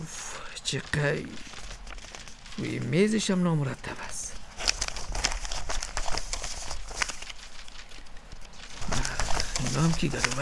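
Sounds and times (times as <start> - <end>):
papers rustling while being rummaged through on a desk: 0.0 - 10.3
speech: 0.7 - 1.6, 2.6 - 4.2, 9.8 - 10.3
sharp flicks of paper: 0.9 - 2.9, 4.4 - 10.3.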